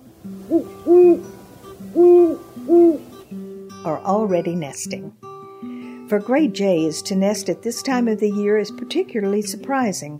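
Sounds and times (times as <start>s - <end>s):
great horned owl hooting in late-winter nesting season: 0.4s - 3.2s
speech: 0.5s - 1.4s, 2.0s - 2.7s, 3.8s - 5.3s, 6.1s - 10.1s.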